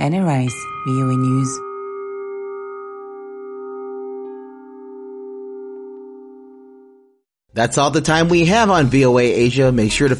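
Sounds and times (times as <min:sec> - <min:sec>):
speech: 0:00.0 - 0:01.7, 0:07.6 - 0:10.1
large church bell tolling: 0:00.5 - 0:07.0.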